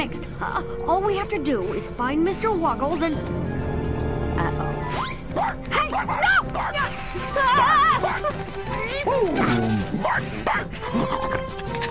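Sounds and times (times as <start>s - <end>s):
speech: 0.0s - 3.7s, 4.4s - 11.5s
male dog barking and whimpering: 5.3s - 6.9s, 9.4s - 11.8s.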